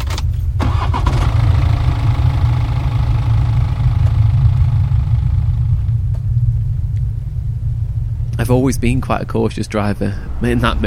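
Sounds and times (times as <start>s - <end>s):
car engine cranking and starting with ignition key: 0.0s - 10.8s
speech: 8.5s - 10.8s.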